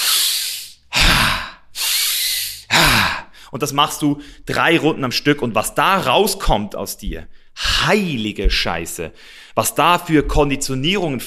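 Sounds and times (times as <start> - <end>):
long forceful inhale of a tantric breathwork exercise: 0.0 - 3.5, 9.2 - 9.6
rough sighing exhale of a tantric breathwork exercise: 0.0 - 3.5
speech: 3.5 - 11.2.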